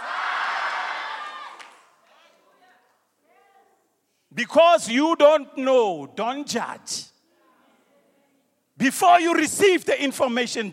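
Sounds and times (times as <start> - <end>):
large church audience shouting together: 0.0 - 1.6
speech: 4.4 - 7.1, 8.8 - 10.7.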